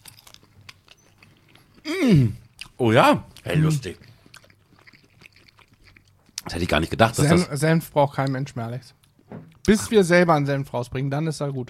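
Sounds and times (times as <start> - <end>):
person chewing a bratwurst with sweet and sticky sauce: 0.0 - 7.4
speech: 1.9 - 4.0, 6.5 - 9.0, 9.7 - 11.6.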